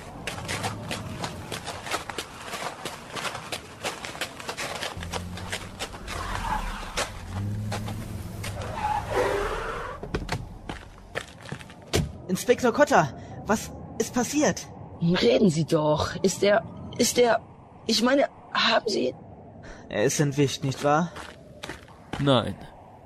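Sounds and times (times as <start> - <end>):
gravelly outdoor crunching: 0.0 - 12.5, 20.2 - 22.9
many car engines rumbling driving onto a beach: 0.0 - 17.2
speech: 12.3 - 19.2, 19.9 - 21.3, 22.2 - 22.7.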